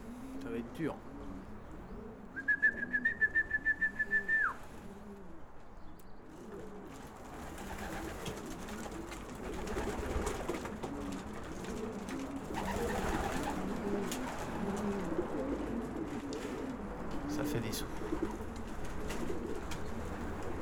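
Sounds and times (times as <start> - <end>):
pigeons cooing: 0.0 - 20.6
speech: 0.4 - 1.1
man giving a loud trilling whistle to call pigeons: 2.4 - 4.6.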